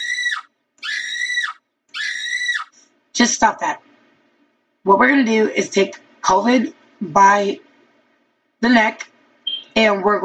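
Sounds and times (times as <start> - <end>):
person screaming in panic: 0.0 - 2.7
speech: 3.2 - 3.9, 4.8 - 7.7, 8.6 - 9.1, 9.8 - 10.2.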